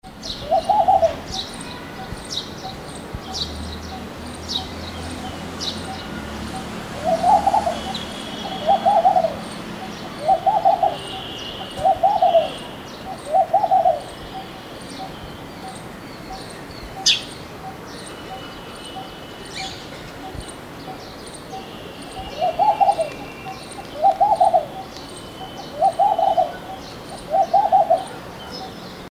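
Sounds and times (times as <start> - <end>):
palm dove: 0.2 - 4.0, 5.8 - 15.2, 21.6 - 28.8.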